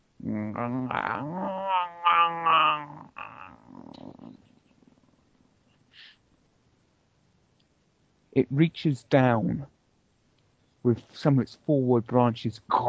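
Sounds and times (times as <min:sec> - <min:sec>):
speech: 0:00.2 - 0:03.0, 0:08.4 - 0:09.7, 0:10.8 - 0:12.8
monstrous creature roaring and growling: 0:00.2 - 0:03.9
faint hiss: 0:03.6 - 0:12.8.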